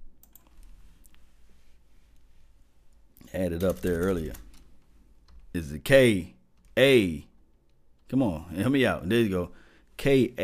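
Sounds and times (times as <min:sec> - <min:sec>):
low steady hum: 0:00.0 - 0:10.4
speech: 0:03.3 - 0:04.5, 0:05.5 - 0:07.3, 0:08.1 - 0:10.4
faint typing on a computer keyboard: 0:03.6 - 0:04.7.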